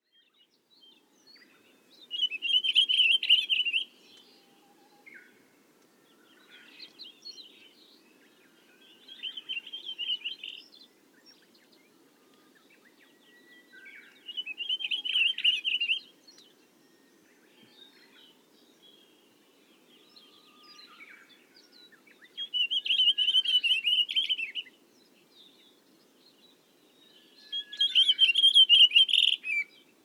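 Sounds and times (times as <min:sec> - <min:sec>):
pine grosbeak calling in Kamikawa: 0:02.1 - 0:03.9, 0:14.1 - 0:16.1, 0:22.4 - 0:24.7, 0:27.5 - 0:29.7.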